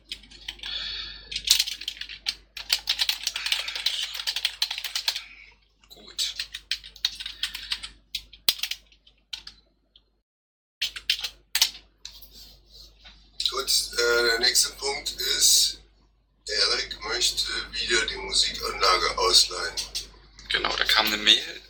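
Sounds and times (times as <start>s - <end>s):
typing on a computer keyboard: 0.0s - 5.3s, 6.2s - 9.6s, 10.8s - 12.0s
low steady hum: 0.0s - 10.1s, 11.7s - 21.6s.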